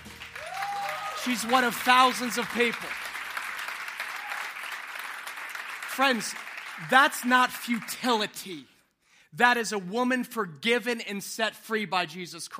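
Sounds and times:
congregation applauding: 0.0s - 8.4s
speech: 1.2s - 3.0s, 6.0s - 8.7s, 9.3s - 12.5s.

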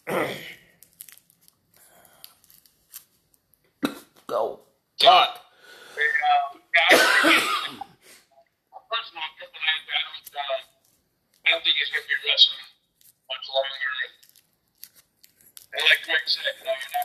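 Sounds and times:
plastic cough drop wrapper tearing open: 0.7s - 3.4s, 12.9s - 13.2s, 14.1s - 17.0s
speech: 4.3s - 5.4s
loud rough choking cough: 6.9s - 8.0s
phone-like voice sounds: 8.8s - 10.7s, 11.5s - 14.2s, 15.7s - 17.0s.

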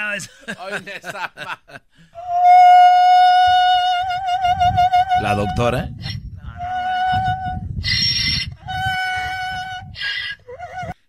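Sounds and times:
speech: 0.0s - 2.2s, 4.6s - 6.2s
laughter: 0.3s - 1.9s
female donkey braying: 2.2s - 11.0s.

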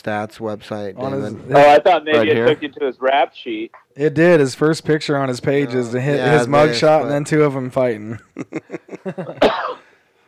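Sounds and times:
speech: 0.0s - 9.5s
laughter: 8.1s - 9.5s
person coughing: 9.4s - 10.0s.

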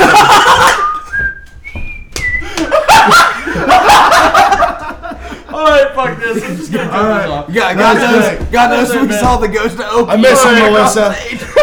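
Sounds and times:
people laughing: 0.0s - 1.1s, 2.4s - 11.6s
person whistling a TV theme tune: 0.6s - 2.7s
speech: 7.0s - 11.5s.

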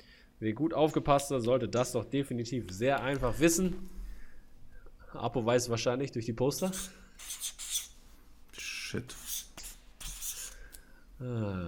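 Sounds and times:
speech: 0.4s - 4.0s, 5.1s - 7.6s, 8.9s - 9.2s, 11.2s - 11.6s
pens scratching across paper as quiz players write answers: 6.6s - 10.6s.

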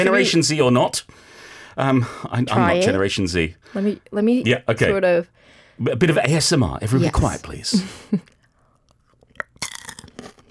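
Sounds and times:
speech: 0.0s - 8.4s
crisp snack being bitten and chewed: 8.2s - 10.4s.

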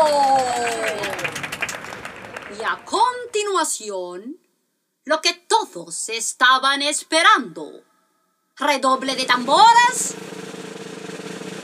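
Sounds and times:
audience clapping and cheering: 0.0s - 3.5s
speech: 2.7s - 4.4s, 5.0s - 7.9s, 8.6s - 10.4s.

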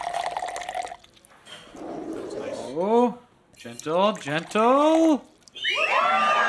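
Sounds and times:
bottled water pouring from a bottle into a glass: 0.0s - 1.4s, 3.6s - 5.6s
speech: 2.8s - 6.3s.

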